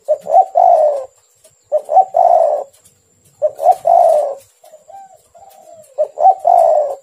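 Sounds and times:
spotted dove cooing hoarse falling coos: 0:00.0 - 0:07.0.

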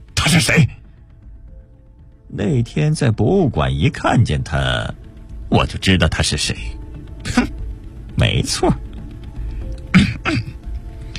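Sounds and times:
speech: 0:00.3 - 0:00.8, 0:02.4 - 0:07.5, 0:08.2 - 0:08.8, 0:10.3 - 0:10.5
old librarian clearing his throat: 0:07.2 - 0:07.6, 0:09.9 - 0:10.6.

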